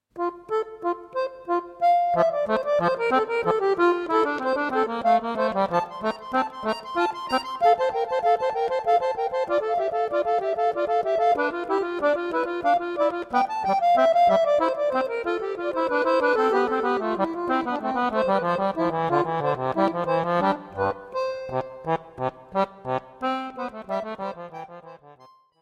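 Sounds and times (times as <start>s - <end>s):
accordion playing a piece in F major: 0.2s - 25.4s.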